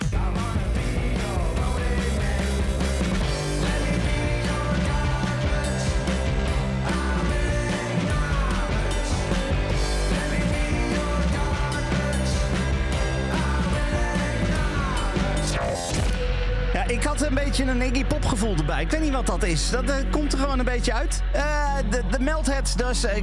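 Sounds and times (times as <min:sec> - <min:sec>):
sung vocal over rock music: 0:00.0 - 0:17.6
rock single by a four-piece band: 0:00.0 - 0:23.2
speech: 0:17.6 - 0:23.2.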